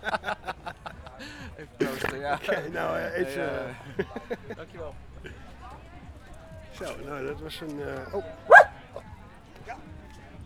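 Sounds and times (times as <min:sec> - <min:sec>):
laughter: 0:00.0 - 0:10.4
speech: 0:01.6 - 0:05.4, 0:06.8 - 0:08.5
dog barking: 0:08.0 - 0:08.8.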